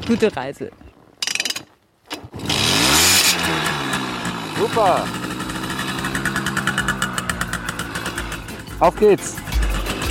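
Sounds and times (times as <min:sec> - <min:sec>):
speech: 0:00.1 - 0:00.9, 0:04.6 - 0:05.2, 0:08.8 - 0:09.5
small two-stroke Simson moped engine starting and idling: 0:02.3 - 0:10.0.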